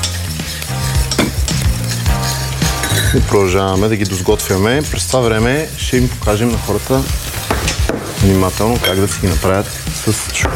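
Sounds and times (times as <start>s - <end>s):
food sizzling in a pan as water is added: 0.0s - 10.5s
speech: 3.1s - 10.5s.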